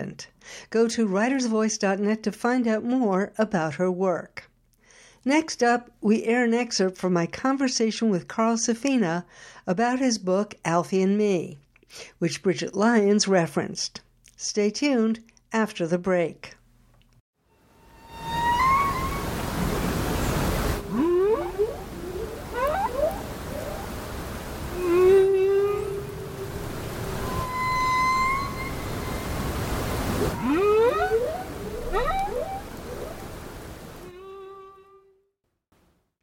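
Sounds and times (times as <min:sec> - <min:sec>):
speech: 0:00.0 - 0:04.5, 0:05.2 - 0:16.6
ocean noise: 0:17.8 - 0:34.2
humpback whale song: 0:17.8 - 0:34.9.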